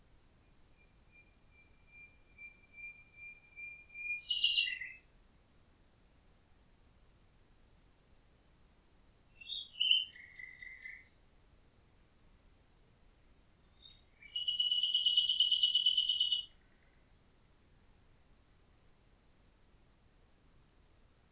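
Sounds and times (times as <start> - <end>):
common nightingale singing with whistled notes and fast rattling trill: 0.4 - 5.1, 9.3 - 11.2, 13.6 - 17.4.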